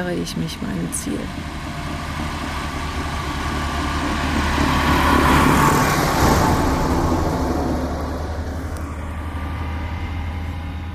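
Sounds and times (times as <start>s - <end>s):
speech: 0.0s - 2.4s
farm machinery engine droning at a farm: 0.0s - 10.9s.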